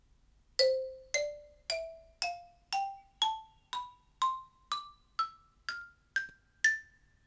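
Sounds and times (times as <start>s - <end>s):
diatonic xylophone: 0.6s - 7.0s.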